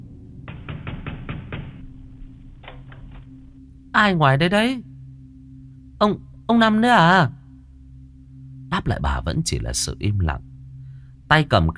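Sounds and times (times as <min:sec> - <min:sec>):
loud knocking on a door: 0:00.5 - 0:01.9
speech: 0:04.0 - 0:04.9, 0:06.0 - 0:07.4, 0:08.8 - 0:10.5, 0:11.3 - 0:11.7.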